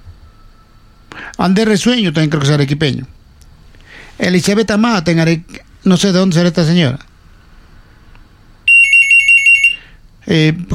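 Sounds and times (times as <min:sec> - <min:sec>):
speech: 0:01.4 - 0:03.2, 0:04.2 - 0:07.1, 0:10.3 - 0:10.7
telephone ringing for an incoming call: 0:08.7 - 0:09.8.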